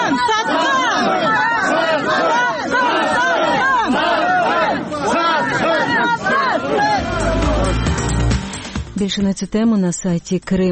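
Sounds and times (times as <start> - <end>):
angry crowd shouting at a man: 0.0 - 8.3
speech: 9.0 - 10.6.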